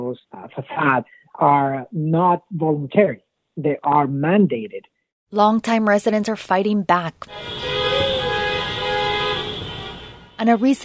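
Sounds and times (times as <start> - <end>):
speech: 0.0 - 8.0, 10.4 - 10.8
street traffic rumble: 7.2 - 10.8
caravan of cars honking horns on 18th Street: 7.3 - 10.8.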